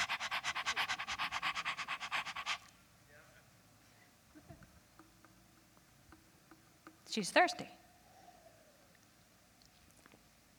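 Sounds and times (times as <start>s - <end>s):
dog panting fast after a walk: 0.0s - 2.7s
speech: 7.2s - 7.8s.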